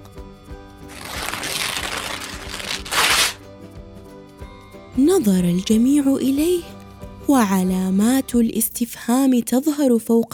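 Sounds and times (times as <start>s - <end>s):
paper being torn to shreds: 0.9s - 3.4s
speech: 5.0s - 10.3s.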